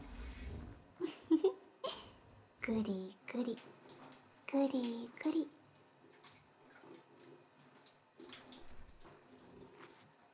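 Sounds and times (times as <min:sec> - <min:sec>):
speech: 0:02.7 - 0:03.8, 0:04.5 - 0:05.6
water running from a tap or shower rinsing off soap foam: 0:02.7 - 0:10.3
soft wet rubbing: 0:03.5 - 0:10.3.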